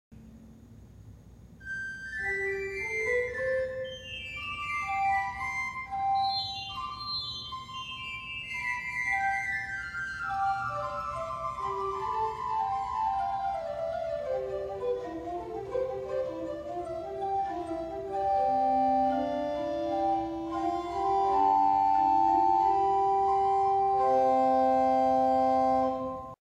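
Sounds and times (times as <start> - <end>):
organ playing on a Sifflet 1' stop: 1.6 - 26.4.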